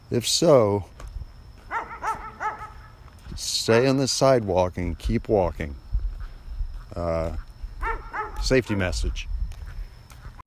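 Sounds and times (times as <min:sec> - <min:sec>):
speech: 0:00.1 - 0:01.0, 0:03.4 - 0:05.8, 0:06.9 - 0:07.5, 0:08.4 - 0:09.3
dog barking: 0:01.7 - 0:02.9, 0:07.8 - 0:08.8.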